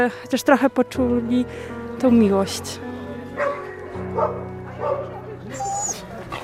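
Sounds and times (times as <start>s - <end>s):
speech: 0.0s - 2.8s, 4.2s - 5.7s
dogs barking in shelter kennels: 3.4s - 6.4s
dog whimpering in shelter kennels: 5.5s - 6.4s.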